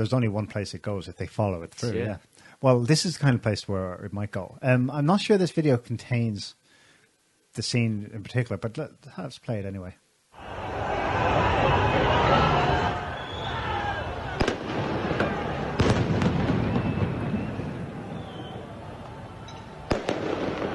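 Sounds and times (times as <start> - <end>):
speech: 0.0 - 6.6, 7.6 - 10.6
crowd roaring at a rally: 10.4 - 19.9
fireworks cracking at a rally: 14.1 - 20.7
gunfire at a rally: 14.3 - 17.8, 19.9 - 20.7.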